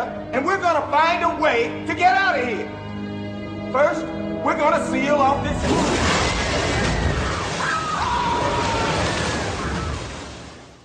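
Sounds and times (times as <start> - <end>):
speech: 0.4 - 2.8, 3.7 - 6.1
loud dense roar of churning water in a movie shark attack effect: 5.5 - 10.8
crashing noise: 5.6 - 10.4.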